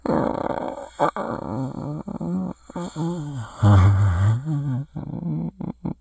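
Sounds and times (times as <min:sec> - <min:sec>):
infected creature idle moaning: 0:00.0 - 0:05.6.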